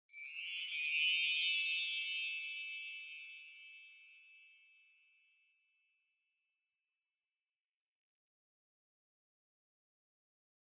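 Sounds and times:
wind chimes with reverb up high: 0:00.1 - 0:05.0.

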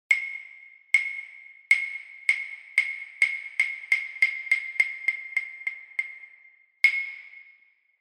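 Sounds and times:
hyoshigi wooden clappers striking: 0:00.1 - 0:07.3.

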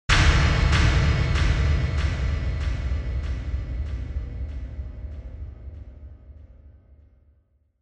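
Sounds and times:
low-delay impact: 0:00.1 - 0:06.4.

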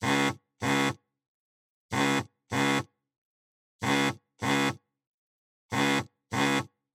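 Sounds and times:
cell phone vibrating on a table: 0:00.0 - 0:01.0, 0:01.9 - 0:03.0, 0:03.8 - 0:04.9, 0:05.7 - 0:06.9.

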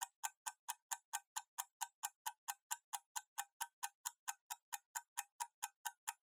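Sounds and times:
kitchen timer ticking: 0:00.0 - 0:06.2.

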